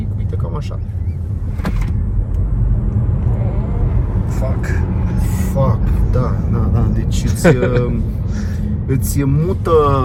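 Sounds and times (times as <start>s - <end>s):
car engine roaring while accelerating hard: 0.0s - 10.0s
speech: 0.6s - 1.8s, 5.6s - 10.0s.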